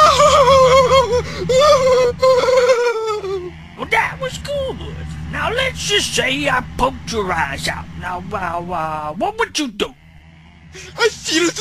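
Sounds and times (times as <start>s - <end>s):
person letting out acted screams of pain in an acting exercise: 0.0s - 3.5s
person gasping for breath: 1.2s - 1.5s
speech: 6.2s - 10.0s, 11.0s - 11.5s.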